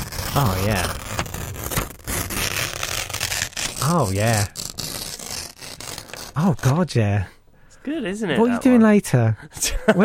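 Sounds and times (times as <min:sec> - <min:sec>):
paper being torn up: 0:00.0 - 0:07.0
speech: 0:00.4 - 0:01.2, 0:03.8 - 0:04.6, 0:06.4 - 0:10.0.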